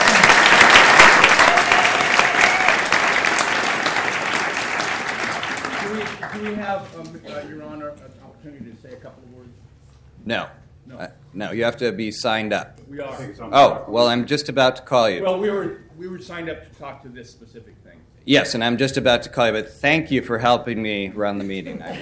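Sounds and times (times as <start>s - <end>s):
audience applause at a meeting in Portland: 0.0s - 6.7s
speech: 6.8s - 22.0s.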